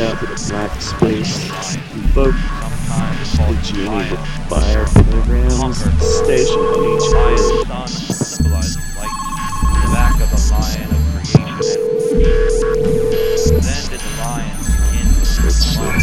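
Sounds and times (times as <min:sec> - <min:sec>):
speech: 0:00.1 - 0:09.1
telephone keypad dialing tones: 0:06.0 - 0:16.0.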